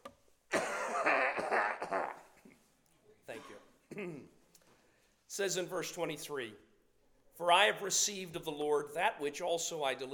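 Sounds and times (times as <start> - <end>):
man clearing his throat while reading aloud: 0.5 - 2.6, 3.3 - 4.4
speech: 4.0 - 4.4, 5.3 - 6.7, 7.4 - 10.1.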